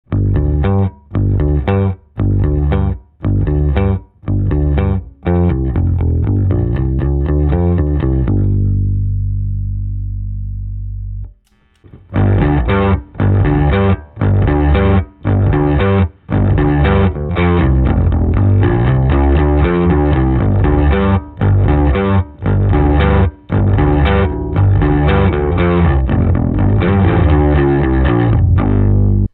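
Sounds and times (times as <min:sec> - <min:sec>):
VT overdrive fuzz pedal distortion: 0:00.1 - 0:29.3.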